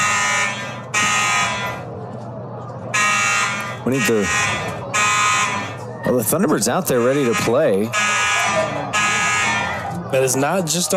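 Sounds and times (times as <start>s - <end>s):
fire alarm sounding in a press box: 0.0s - 1.9s, 2.9s - 5.8s, 6.9s - 10.0s
speech: 3.8s - 4.7s, 6.0s - 8.9s, 10.1s - 10.9s.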